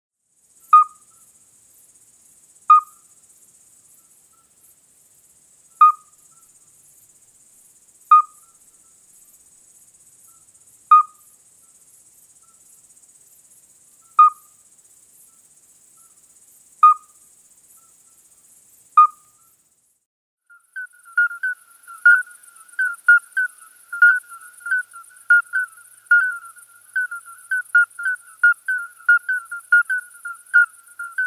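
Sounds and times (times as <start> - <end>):
midwife toad Alytes obstetricans chorus: 0.7 - 1.1, 2.7 - 3.0, 5.8 - 6.2, 8.1 - 8.6, 10.9 - 11.3, 14.1 - 14.6, 16.8 - 17.2, 19.0 - 19.5, 20.5 - 31.2.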